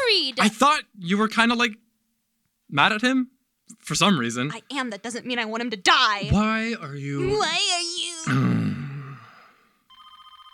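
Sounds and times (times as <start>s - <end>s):
speech: 0.1s - 1.8s, 2.7s - 8.6s
breathy exhale: 8.4s - 9.8s
office telephone ringing with a warbling electronic trill: 9.9s - 10.5s.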